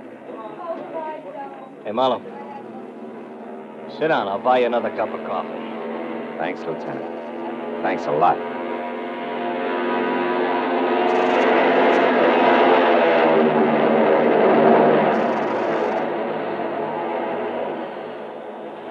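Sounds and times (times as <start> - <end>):
speech: 1.8 - 2.3, 3.9 - 5.6, 6.4 - 7.2, 7.8 - 8.5
propeller airplane engines roaring through takeoff: 2.0 - 18.8.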